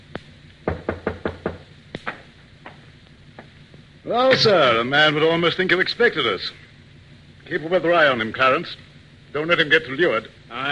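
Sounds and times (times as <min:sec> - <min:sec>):
faint hiss: 0:00.0 - 0:10.6
knocking on a wooden door: 0:00.7 - 0:01.7
speech: 0:04.1 - 0:06.6, 0:07.5 - 0:10.6.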